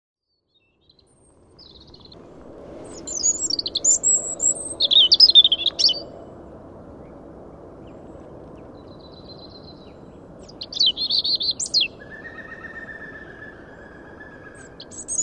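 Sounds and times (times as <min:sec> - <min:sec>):
low rumble: 0:01.1 - 0:15.0
European robin Erithacus rubecula singing: 0:02.9 - 0:06.1, 0:07.8 - 0:15.2.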